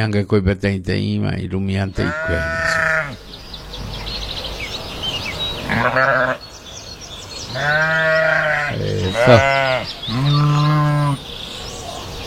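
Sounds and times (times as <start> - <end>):
speech: 0.0 - 2.9, 5.7 - 6.4, 7.5 - 8.0, 8.7 - 10.4
birds chirping: 0.9 - 12.2
goat bleating with wavering drawn-out cries: 2.0 - 3.2, 5.7 - 6.4, 7.5 - 11.2.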